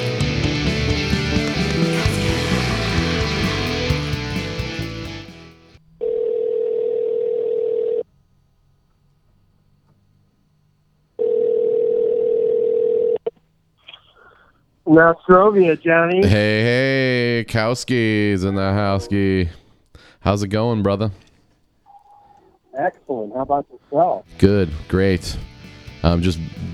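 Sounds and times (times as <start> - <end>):
music: 0.0 - 5.8, 24.3 - 26.7
telephone dial tone while placing a call: 6.0 - 8.1, 11.2 - 13.3
speech: 14.9 - 19.6, 20.2 - 21.3, 22.8 - 26.7.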